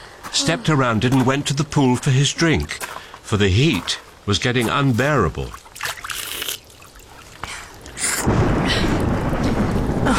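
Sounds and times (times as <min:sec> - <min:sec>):
speech: 0:00.3 - 0:05.6
steady rain hissing: 0:01.8 - 0:10.1
deep rumble of thunder: 0:07.8 - 0:10.1.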